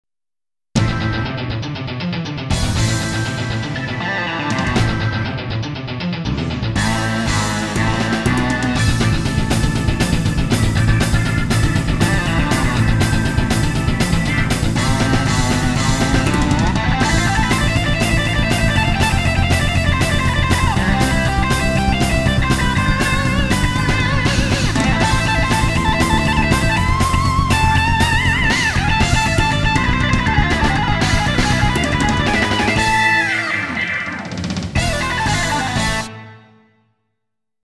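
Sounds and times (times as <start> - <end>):
rock guitar from SD-90 MIDI module: 0.8 - 36.8
organ from SD-90 MIDI module: 6.8 - 36.6.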